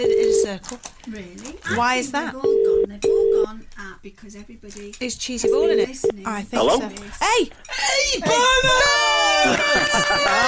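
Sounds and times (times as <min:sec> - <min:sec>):
telephone dialing tones and electronic keypad tones: 0:00.0 - 0:00.5, 0:02.4 - 0:03.5, 0:05.4 - 0:06.2
speech: 0:00.0 - 0:10.4
laughter: 0:08.0 - 0:10.4.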